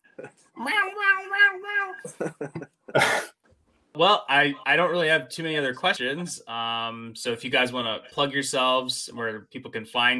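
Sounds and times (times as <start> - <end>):
human voice imitating a cat meowing and hissing: 0.6 - 2.2
speech: 2.0 - 3.1, 4.0 - 10.1
laughter: 2.0 - 3.3.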